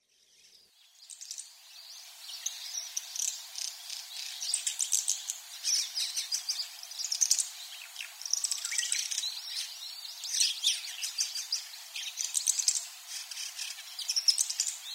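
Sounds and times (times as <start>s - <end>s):
rosy starling calling on Yonaguni: 0.3s - 14.9s.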